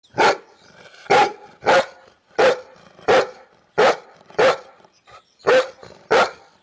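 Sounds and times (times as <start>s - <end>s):
dogs: 1.1s - 4.8s, 5.4s - 6.6s.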